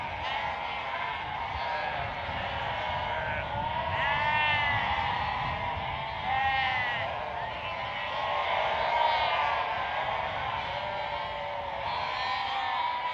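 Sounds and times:
sheep bleating on a prairie: 0.0s - 13.1s.

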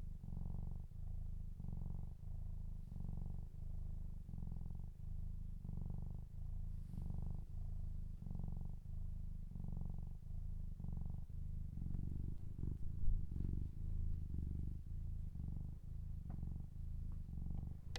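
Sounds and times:
cat purring with a deep rhythmic rumble: 0.0s - 17.9s
faint small clicks: 16.2s - 17.9s.

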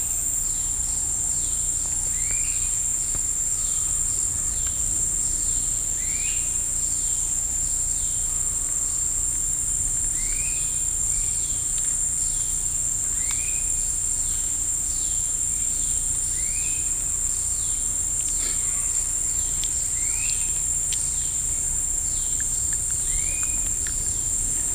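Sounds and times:
insects calling in shrill chorus in woods in Costa Rica: 0.0s - 24.7s.

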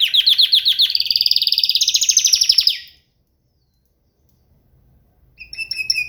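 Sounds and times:
bright whistled canary notes: 0.0s - 3.0s, 5.4s - 6.0s
canary song trill: 0.0s - 3.0s, 5.4s - 6.0s.

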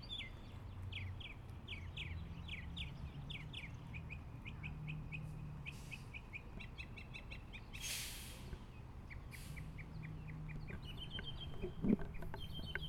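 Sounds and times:
bird chirping: 0.0s - 8.0s, 8.6s - 12.8s
bursts of hiss: 7.8s - 8.6s.

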